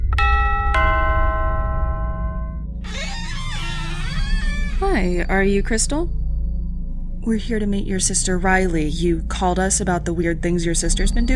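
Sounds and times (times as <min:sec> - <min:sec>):
house doorbell chiming ding-dong: 0:00.2 - 0:02.6
low rumble: 0:02.2 - 0:11.3
speech: 0:04.9 - 0:06.2, 0:07.2 - 0:11.3.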